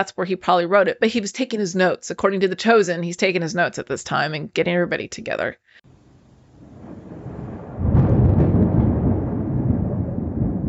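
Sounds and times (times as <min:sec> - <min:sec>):
speech: 0:00.0 - 0:05.8
deep rolling rumble of thunder: 0:05.9 - 0:10.6.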